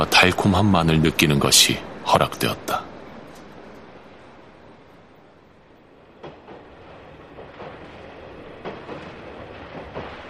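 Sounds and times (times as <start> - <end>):
speech: 0.0 - 2.9
subway train rumbling along rails: 0.0 - 10.2
sharp clacks and rattles of subway train: 6.2 - 10.2.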